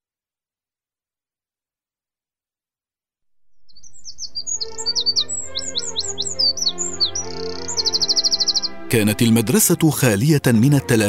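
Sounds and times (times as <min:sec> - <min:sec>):
sparrow chirping: 0:03.5 - 0:09.4
speech: 0:08.9 - 0:11.0.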